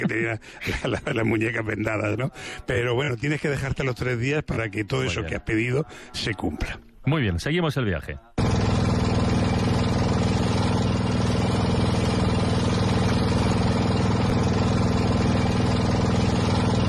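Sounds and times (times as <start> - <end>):
laughter: 0.0 - 2.3
speech: 0.0 - 8.3
boat motor running on a river trip in Laos: 8.4 - 16.8.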